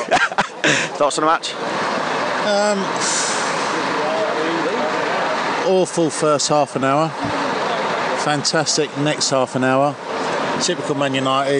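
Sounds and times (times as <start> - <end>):
laughter: 0.0 - 1.1
bus engine idling: 0.0 - 11.5
speech: 0.7 - 3.3, 5.6 - 7.4, 8.2 - 11.5
bus air brakes hissing on release: 1.6 - 4.0.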